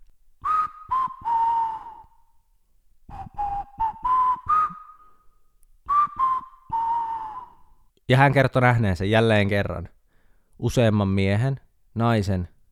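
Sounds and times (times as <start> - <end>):
person whistling a slow wavering tune: 0.4 - 2.4, 3.1 - 7.8
speech: 8.1 - 10.0, 10.6 - 12.5.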